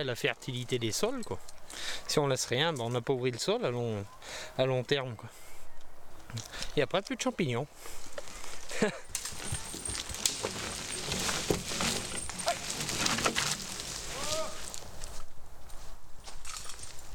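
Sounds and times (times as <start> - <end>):
speech: 0.0 - 5.4, 6.3 - 8.0, 8.7 - 9.1
working horse's hooves walking in a forest: 7.9 - 17.1.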